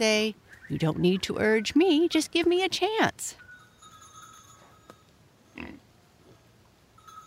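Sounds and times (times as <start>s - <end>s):
speech: 0.0s - 3.4s
pig grunting: 5.6s - 5.8s.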